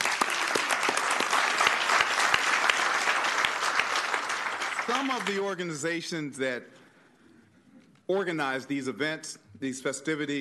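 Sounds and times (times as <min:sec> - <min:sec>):
audience applause from a sizable crowd: 0:00.0 - 0:05.6
speech: 0:04.9 - 0:06.8, 0:08.1 - 0:10.3.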